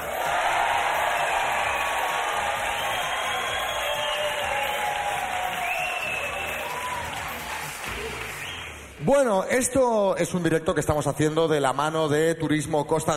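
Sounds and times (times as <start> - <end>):
individual whoops from the crowd: 0.0 - 7.4
large live crowd cheering and shouting at a live broadcast in Madrid: 0.0 - 8.7
speech: 9.1 - 13.1.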